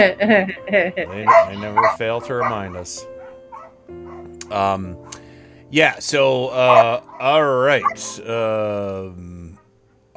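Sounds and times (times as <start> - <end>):
speech: 0.0 - 3.1, 3.9 - 9.4
corgis barking and yipping: 1.0 - 4.4, 6.4 - 8.2.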